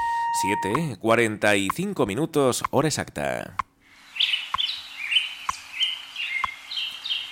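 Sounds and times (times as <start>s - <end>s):
speech: 0.4s - 3.7s
small birds chirping at dawn: 4.0s - 7.3s.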